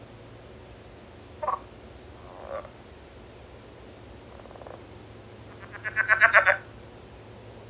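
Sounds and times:
low background hum: 0.0s - 7.6s
Southern leopard frog Rana sphenocephala clucking and chuckling: 1.4s - 2.8s, 4.3s - 4.9s, 5.5s - 6.7s.

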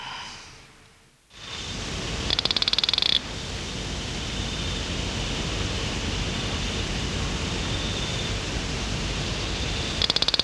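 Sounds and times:
noisy hiss: 0.0s - 10.4s
Hosmer's frog Cophixalus hosmeri giving clicking pulses: 2.2s - 3.2s, 10.0s - 10.4s.

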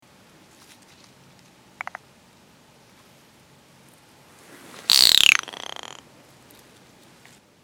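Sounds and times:
California giant salamander cry, Dicamptodon ensatus: 4.9s - 6.0s.

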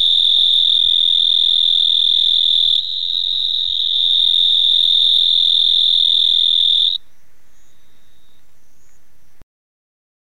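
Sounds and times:
mottled shovel-nosed frog Hemisus marmoratus high-pitched buzzing trill: 0.0s - 7.0s.

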